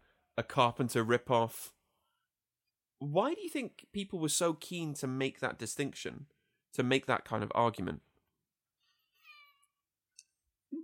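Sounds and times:
speech: 0.4 - 1.8, 3.0 - 8.1
cat giving a drawn-out meow: 9.1 - 9.8.

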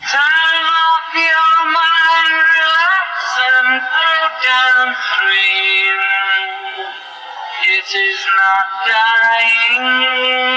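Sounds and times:
sustained vocal through rotating Leslie organ speaker: 0.0 - 10.5
speech: 7.8 - 10.5.

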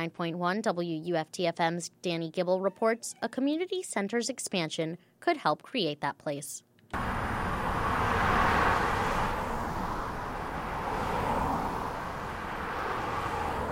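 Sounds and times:
speech: 0.0 - 7.1
cars passing by on a downtown street in Gainesville: 7.0 - 13.7
constant roadway rumble of downtown traffic: 7.0 - 13.7.

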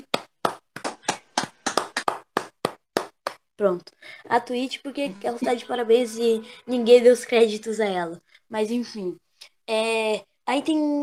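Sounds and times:
hand clapping applause: 0.0 - 3.5
speech: 3.6 - 11.0.

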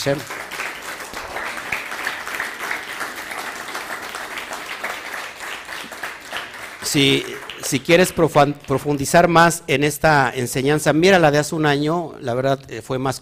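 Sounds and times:
speech: 0.0 - 0.4, 6.9 - 13.1
audience applause with many hands clapping: 0.0 - 9.0.

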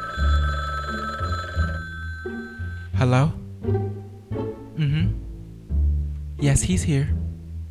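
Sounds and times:
old-style telephone bell ringing: 0.0 - 2.9
speech: 3.0 - 3.8, 4.8 - 5.2, 6.4 - 7.2.

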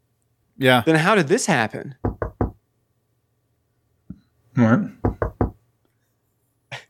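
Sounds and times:
speech: 0.6 - 2.1, 4.6 - 5.0
firm knocks on a door: 2.0 - 2.6, 5.0 - 5.6.

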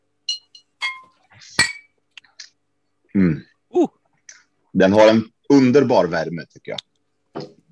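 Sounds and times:
glasses clinking in a toast: 0.2 - 2.0
speech: 3.2 - 4.0, 4.8 - 7.5.

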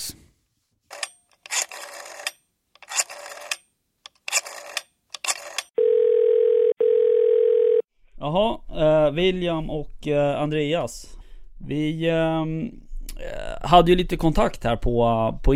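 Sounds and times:
telephone ringing tone of outgoing call: 5.8 - 7.9
speech: 8.2 - 15.5.

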